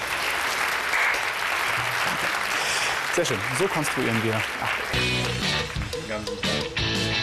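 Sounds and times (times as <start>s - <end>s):
small group applauding: 0.0s - 6.6s
speech: 3.2s - 7.1s.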